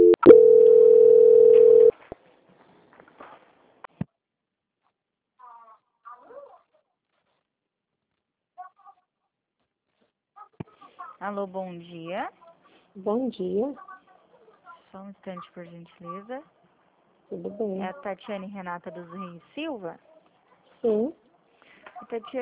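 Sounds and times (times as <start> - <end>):
telephone call-transfer hold tone beep: 0.0 - 1.9
speech: 11.3 - 12.4, 13.0 - 13.9, 14.9 - 16.6, 17.3 - 20.1, 20.8 - 21.2, 22.0 - 22.4.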